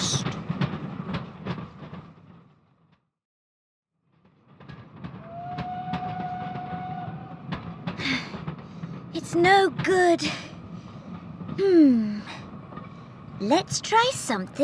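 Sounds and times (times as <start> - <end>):
moving train clattering over rails: 0.0 - 3.0, 4.1 - 14.6
drawn-out metallic squeal of a train: 5.1 - 7.5
speech: 9.2 - 10.5, 11.6 - 12.4, 13.4 - 14.6.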